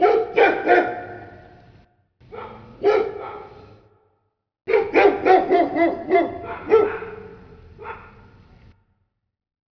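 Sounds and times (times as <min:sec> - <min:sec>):
dog: 0:00.0 - 0:01.2, 0:02.3 - 0:03.7, 0:04.7 - 0:08.3.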